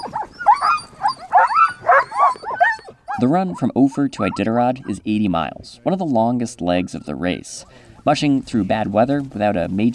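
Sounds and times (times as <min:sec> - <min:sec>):
team of excited sled dogs in harness barking and yipping after a race run: 0:00.0 - 0:05.1
speech: 0:03.2 - 0:09.9.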